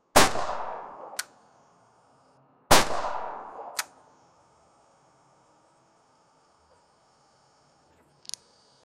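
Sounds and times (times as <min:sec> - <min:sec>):
modern pistol being shot: 0:00.1 - 0:01.3, 0:02.7 - 0:03.9.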